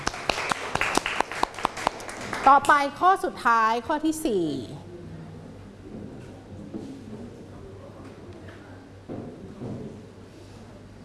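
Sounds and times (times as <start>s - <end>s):
classroom group applauding a student: 0.0s - 2.9s
speech: 2.4s - 4.8s.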